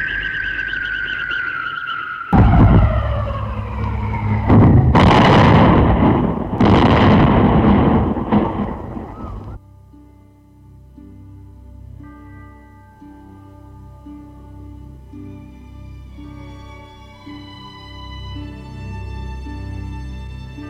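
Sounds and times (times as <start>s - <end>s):
descending whine of a diving plane: 0.0s - 6.6s
loud plane crash explosion: 2.3s - 9.6s
heavy blasts and rumbling bursts: 2.4s - 9.6s.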